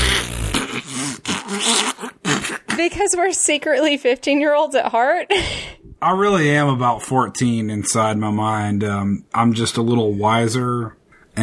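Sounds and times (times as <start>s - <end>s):
fart sound effect: 0.0s - 2.9s
speech: 2.8s - 11.4s.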